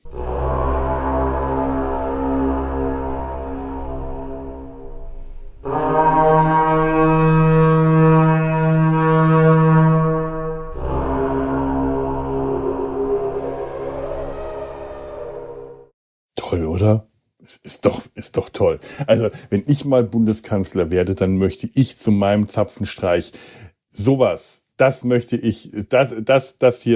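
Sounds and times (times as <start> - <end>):
carnyx ancient Celtic bronze war horn blasts: 0.0 - 15.9
speech: 18.6 - 26.9.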